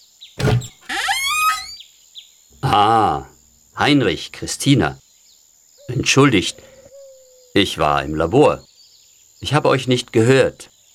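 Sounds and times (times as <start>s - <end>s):
door latch scraping: 0.4s - 1.8s
speech: 2.7s - 5.0s, 5.9s - 6.7s, 7.6s - 8.7s, 9.4s - 10.7s.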